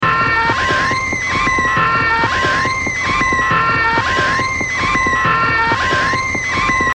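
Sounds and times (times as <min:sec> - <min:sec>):
clown alarm: 0:00.0 - 0:06.9.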